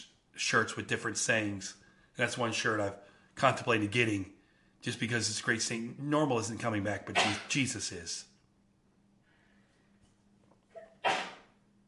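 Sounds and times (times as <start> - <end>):
speech: 0.0 - 8.3
sneeze: 7.2 - 7.6, 10.7 - 11.6.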